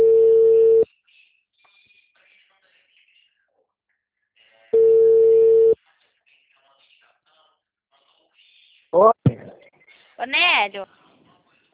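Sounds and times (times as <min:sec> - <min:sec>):
outgoing telephone call ringing tone beeps: 0:00.0 - 0:00.8, 0:04.8 - 0:05.8
speech: 0:09.0 - 0:09.2, 0:10.2 - 0:11.0.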